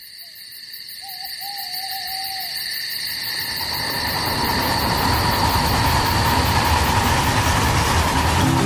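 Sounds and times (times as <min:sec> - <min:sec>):
train rolling by with clattering rumble: 0:03.3 - 0:08.6
high metallic whine of passing train: 0:04.4 - 0:08.6.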